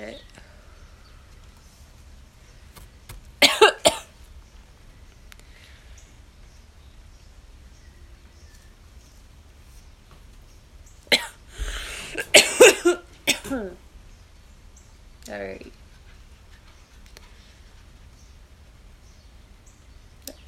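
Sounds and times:
person coughing after smoking a blunt: 0:03.4 - 0:04.1, 0:11.1 - 0:13.8.

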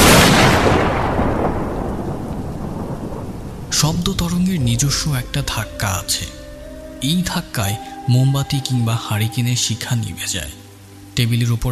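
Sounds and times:
loud thunderclap during a windy storm: 0:00.0 - 0:07.4
speech: 0:04.1 - 0:06.4, 0:07.0 - 0:10.6, 0:11.2 - 0:11.7.

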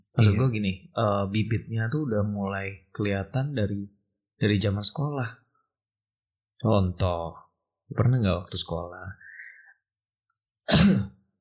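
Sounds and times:
speech: 0:00.2 - 0:05.4, 0:06.6 - 0:09.3, 0:10.7 - 0:11.2
deliberate cough imitating a teacher clearing their throat: 0:10.7 - 0:11.2.

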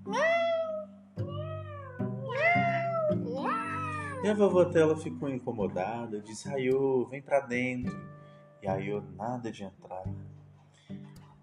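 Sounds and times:
cat meowing: 0:00.1 - 0:04.4
speech: 0:04.2 - 0:10.3.

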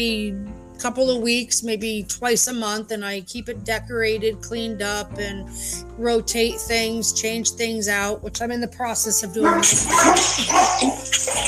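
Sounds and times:
speech: 0:00.0 - 0:11.4
dog barking: 0:09.5 - 0:11.4.

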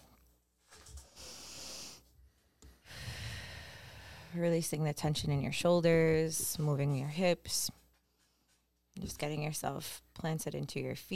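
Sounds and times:
deep breathing in through the nose and out through the mouth during guided relaxation: 0:01.0 - 0:04.4
speech: 0:04.3 - 0:07.8, 0:09.0 - 0:11.1.

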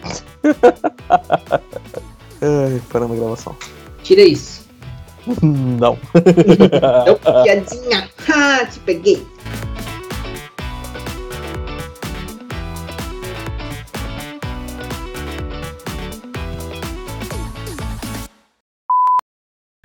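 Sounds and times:
busy music with a steady beat: 0:00.0 - 0:18.3
laughter: 0:00.1 - 0:02.1, 0:05.3 - 0:07.8
speech: 0:00.5 - 0:01.7, 0:02.4 - 0:04.6, 0:05.3 - 0:09.3.

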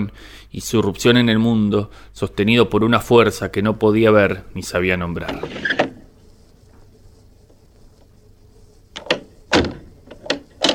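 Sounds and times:
speech: 0:00.0 - 0:05.7
window creaking and rattling open: 0:05.2 - 0:06.2, 0:09.0 - 0:10.7.

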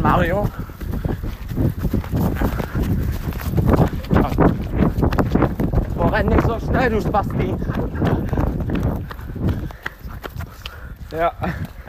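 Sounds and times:
running footsteps pounding on a hard surface: 0:00.0 - 0:11.8
speech: 0:00.2 - 0:00.8, 0:06.2 - 0:08.4, 0:11.1 - 0:11.8
breathing of people running: 0:00.4 - 0:01.4, 0:02.4 - 0:03.4, 0:09.0 - 0:11.8.

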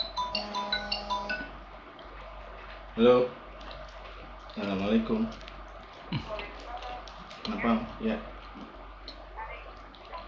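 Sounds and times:
phone ringing tone while placing a call: 0:00.0 - 0:01.6
faint steady hum: 0:00.0 - 0:10.2
speech: 0:03.0 - 0:03.4, 0:04.6 - 0:05.5, 0:07.5 - 0:08.3.

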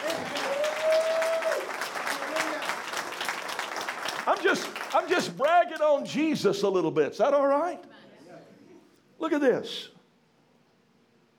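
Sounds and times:
congregation applauding: 0:00.0 - 0:06.0
speech: 0:04.5 - 0:07.9, 0:09.2 - 0:09.9.

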